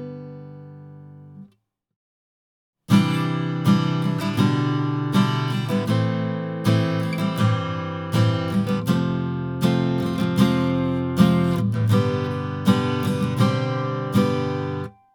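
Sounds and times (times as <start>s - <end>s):
guitar note B: 2.9s - 15.1s.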